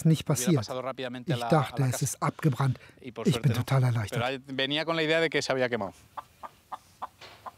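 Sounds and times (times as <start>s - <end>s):
speech: 0.0s - 6.3s
chicken squawking: 6.1s - 7.5s.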